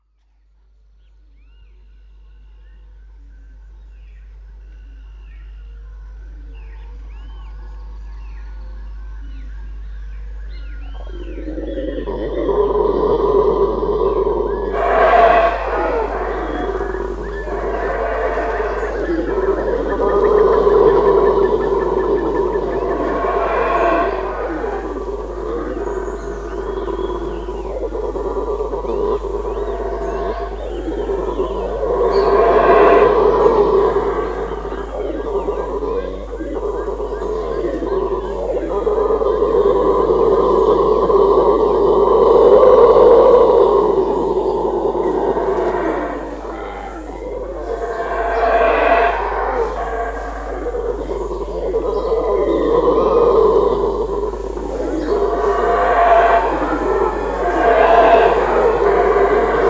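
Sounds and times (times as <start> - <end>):
howler monkey chorus: 1.1 - 59.6.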